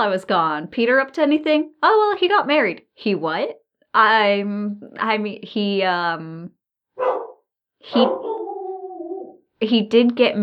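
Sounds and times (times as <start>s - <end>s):
speech: 0.0s - 7.2s, 7.8s - 8.4s, 9.6s - 10.4s
dogs barking and yelping indoors at home: 7.0s - 9.4s.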